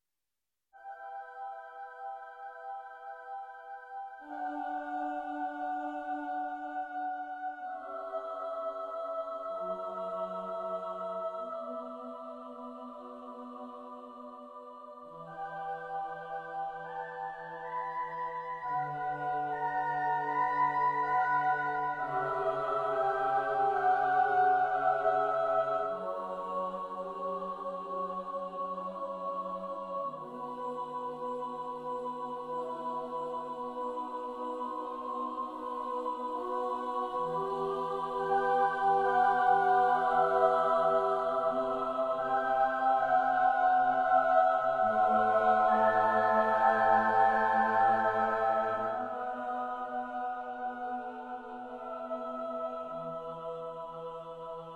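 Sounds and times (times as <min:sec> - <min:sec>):
choir singing: 0:00.8 - 0:54.7.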